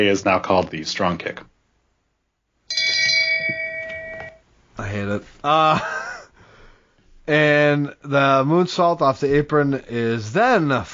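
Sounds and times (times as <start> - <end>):
speech: 0.0 - 1.5, 4.8 - 6.0, 7.3 - 10.9
bright bell struck with sustained metallic tone: 2.7 - 4.4
laughter: 5.5 - 6.4.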